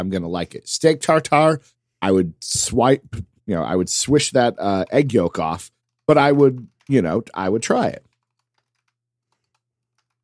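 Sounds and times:
speech: 0.0s - 8.1s
fingers typing in a chat on a computer keyboard: 5.8s - 10.2s.

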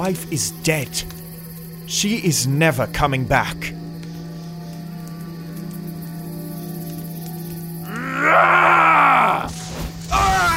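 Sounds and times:
speech: 0.0s - 1.2s, 1.9s - 3.8s
man screaming in agony: 7.9s - 9.5s, 10.1s - 10.5s.

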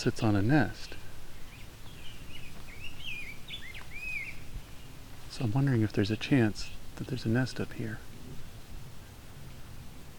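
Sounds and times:
speech: 0.0s - 0.9s, 5.4s - 8.1s
low hiss: 0.0s - 10.1s
grosbeak calling: 0.8s - 4.9s.

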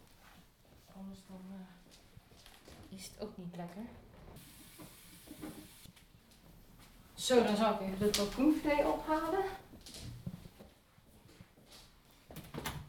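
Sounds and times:
speech: 1.0s - 2.0s, 2.9s - 4.1s, 7.2s - 9.7s
tap running water: 4.4s - 5.9s.

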